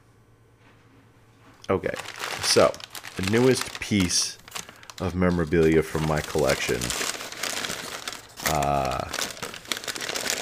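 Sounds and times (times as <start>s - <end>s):
speech: 1.7s - 4.4s, 5.0s - 7.1s, 8.5s - 9.2s
paper bag crinkling as it is unwrapped: 1.8s - 10.3s
person vocalizing: 8.4s - 9.2s.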